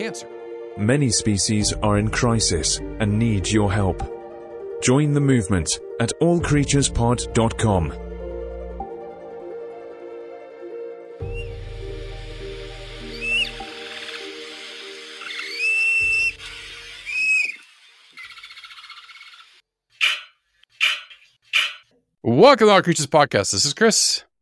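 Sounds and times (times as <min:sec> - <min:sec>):
speech: 0:00.0 - 0:04.2, 0:04.8 - 0:08.1, 0:22.4 - 0:24.3
high whistly chirps and squeaks: 0:11.2 - 0:11.6, 0:12.8 - 0:21.8
low tonal hum: 0:11.2 - 0:17.6.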